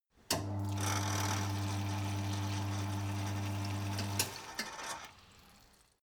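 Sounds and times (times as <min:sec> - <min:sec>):
water running into mechanic sink: 0:00.3 - 0:06.0.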